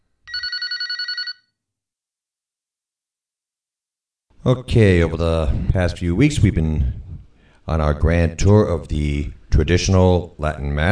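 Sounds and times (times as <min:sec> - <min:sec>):
telephone bell ringing in church: 0:00.3 - 0:01.6
speech: 0:04.5 - 0:07.0, 0:07.7 - 0:10.9.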